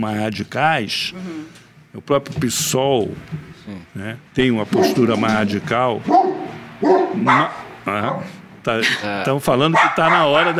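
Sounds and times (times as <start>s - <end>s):
speech: 0.0s - 10.5s
dogs barking: 4.7s - 5.4s, 6.0s - 8.4s, 9.6s - 10.5s.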